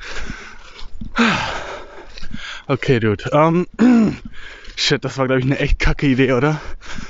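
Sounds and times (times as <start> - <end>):
person breathing heavily out of breath after running from a dog: 0.0 - 3.1, 3.8 - 4.8, 6.5 - 7.0
wind in a forest: 0.0 - 7.0
speech: 2.7 - 7.0.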